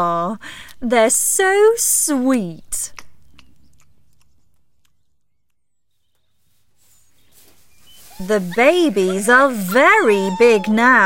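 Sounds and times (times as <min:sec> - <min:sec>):
speech: 0:00.0 - 0:03.0, 0:08.2 - 0:11.0
young farm animals chewing and crunching tomatoes: 0:02.9 - 0:11.0.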